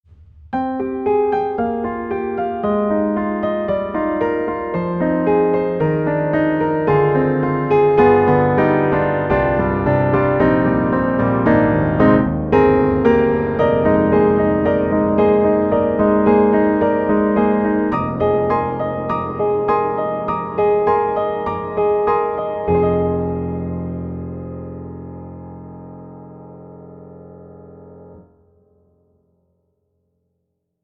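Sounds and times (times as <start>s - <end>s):
Pianoteq D4 Cinematic piano: 0.0s - 30.8s.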